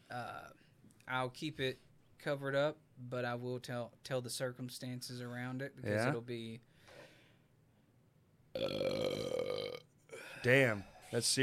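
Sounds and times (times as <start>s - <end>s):
speech: 0.1s - 7.0s, 8.6s - 9.4s, 10.4s - 11.4s
deep bellowing burp: 8.6s - 9.8s.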